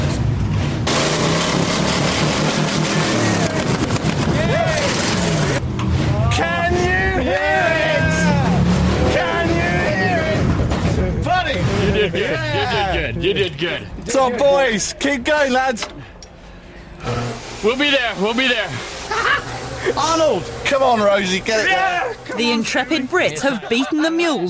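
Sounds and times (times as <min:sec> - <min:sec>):
heavy monster truck engine rumble with revving: 0:00.0 - 0:14.1
several people talking and shouting: 0:02.8 - 0:16.2, 0:17.0 - 0:24.4
laughter: 0:09.3 - 0:14.6, 0:19.0 - 0:20.2, 0:21.7 - 0:24.4
speech: 0:14.2 - 0:16.0, 0:17.6 - 0:18.9, 0:19.9 - 0:24.4.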